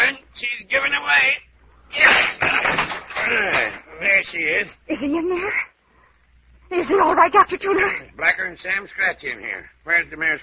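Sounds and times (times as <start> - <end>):
speech: 0.7 - 2.2, 3.3 - 5.7, 6.7 - 10.4
heavy locked wooden door crashing open: 2.0 - 3.8.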